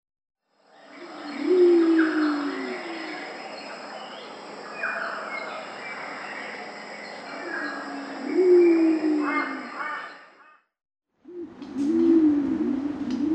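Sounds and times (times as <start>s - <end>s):
pied imperial pigeon deep cooing: 1.0s - 3.3s, 8.2s - 10.0s, 11.2s - 13.3s.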